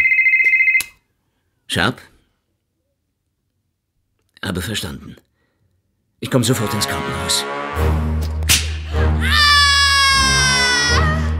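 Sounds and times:
speech: 1.7 - 2.1, 4.5 - 5.3, 6.2 - 8.1
sharp whip crack: 8.2 - 8.9
woman's long high wailing scream: 9.1 - 11.3.

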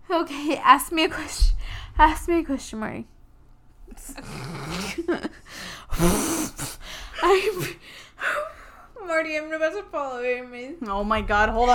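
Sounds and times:
speech: 0.1 - 3.2, 3.9 - 8.4, 9.1 - 11.7
heavy ragged panting breaths: 5.3 - 8.9.

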